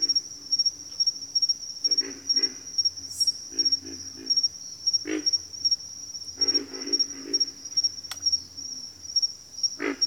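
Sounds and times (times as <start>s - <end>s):
shrill insect drone: 0.0s - 10.0s
pig frog grunting calls: 1.8s - 2.8s, 3.5s - 5.4s, 6.4s - 7.6s, 9.8s - 10.0s.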